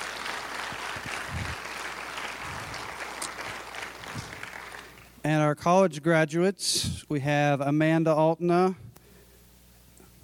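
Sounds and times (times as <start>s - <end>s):
crowd applause: 0.0s - 5.1s
speech: 5.2s - 8.8s.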